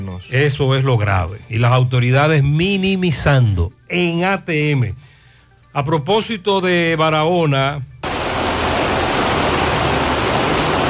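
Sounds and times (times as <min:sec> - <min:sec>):
speech: 0:00.2 - 0:05.0, 0:05.8 - 0:07.9
floodwater rushing over the main road in Polo, Barahona: 0:08.0 - 0:10.8.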